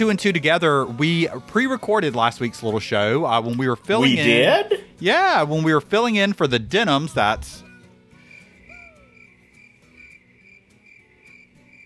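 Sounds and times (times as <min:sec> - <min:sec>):
speech: 0:00.0 - 0:07.6
single descending whistle-like bird call: 0:08.2 - 0:11.2
crickets chirping: 0:08.2 - 0:11.8.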